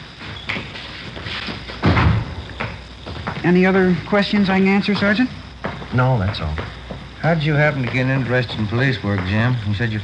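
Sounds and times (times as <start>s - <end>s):
door closing thud: 1.8s - 3.2s
speech: 3.4s - 10.0s.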